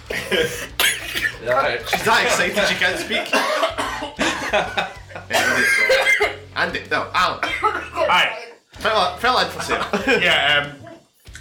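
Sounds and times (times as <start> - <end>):
laughter: 0.0 - 0.6, 1.2 - 6.4, 7.4 - 8.1, 9.4 - 11.1
woman coughing: 0.0 - 4.7, 5.3 - 6.4, 7.4 - 8.1
speech: 0.1 - 3.7, 4.5 - 10.8.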